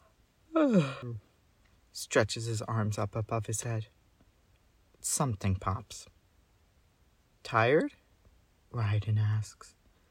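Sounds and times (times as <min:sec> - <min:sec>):
person yawning: 0:00.5 - 0:01.2
speech: 0:00.6 - 0:01.3, 0:02.0 - 0:04.0, 0:05.0 - 0:06.1, 0:07.4 - 0:08.0, 0:08.7 - 0:09.8.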